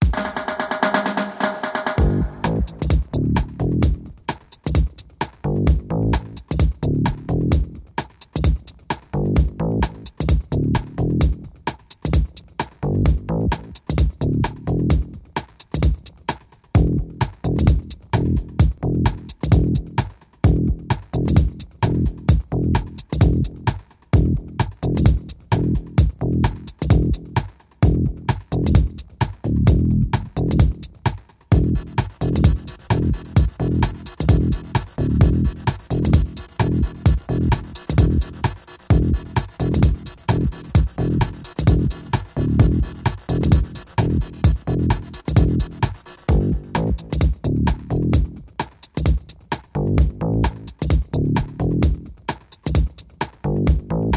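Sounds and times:
steady pulsing drum and bass: 0.0 - 54.1.

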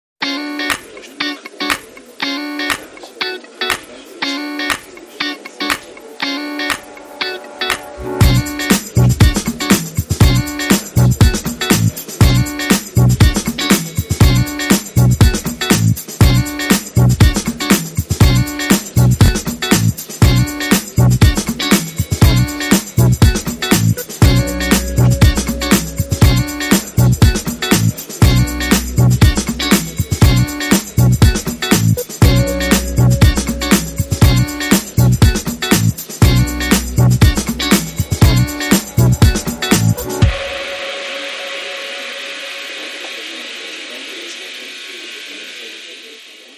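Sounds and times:
groovy strings: 0.6 - 44.1.

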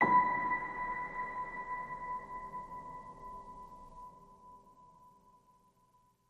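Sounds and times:
piano ping: 0.0 - 4.8.

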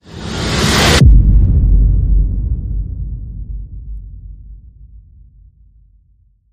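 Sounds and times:
boom whoosh: 0.1 - 5.0.

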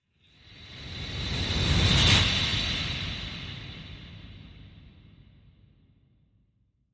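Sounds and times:
sleigh bell whoosh: 1.4 - 3.2.

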